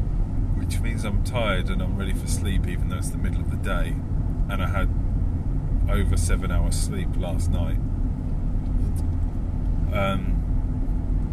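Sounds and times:
low engine rumble inside a moving car: 0.0s - 11.3s
speech: 0.8s - 5.0s, 5.9s - 7.9s, 9.9s - 10.3s.

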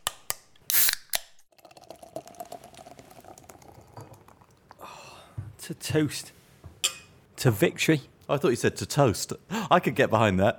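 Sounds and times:
Guinness can cracked open: 0.0s - 1.4s
Guinness being poured, crackling fizz: 1.5s - 4.8s
speech: 5.7s - 6.4s, 7.4s - 10.5s.

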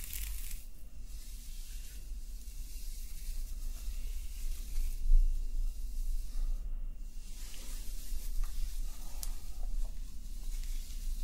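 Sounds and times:
hands playing with hair in a soft crackling rustle: 0.0s - 6.6s, 7.2s - 11.2s
constant low rumble: 0.0s - 11.2s.

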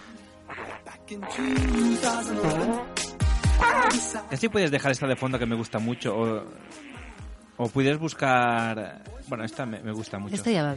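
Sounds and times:
low blubbery fart sound effects: 0.5s - 3.0s, 3.6s - 4.0s, 6.6s - 7.3s
speech: 1.1s - 3.0s, 3.6s - 6.8s, 7.6s - 10.7s.

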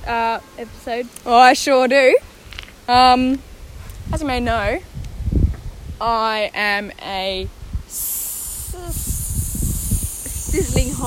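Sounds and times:
speech: 0.0s - 2.3s, 2.9s - 3.5s, 4.1s - 5.0s, 6.0s - 8.1s, 10.5s - 11.0s
voice imitating a sizzling hiss: 7.9s - 11.0s.

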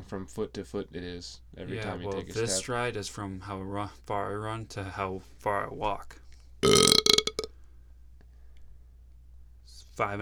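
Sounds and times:
speech: 0.1s - 7.1s, 10.0s - 10.2s
loud burp: 6.6s - 7.5s.

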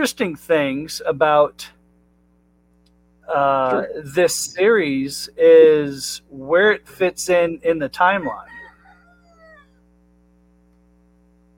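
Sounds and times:
speech: 0.0s - 1.8s, 3.3s - 8.6s
steady low electrical hum: 0.0s - 11.5s
rooster crowing outside window: 8.0s - 9.8s.

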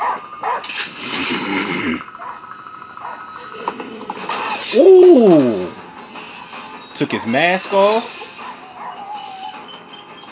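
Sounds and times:
dog barking and growling in a video game: 0.0s - 0.8s, 2.1s - 3.2s, 4.8s - 5.8s
speech: 4.7s - 5.6s, 7.0s - 8.2s.

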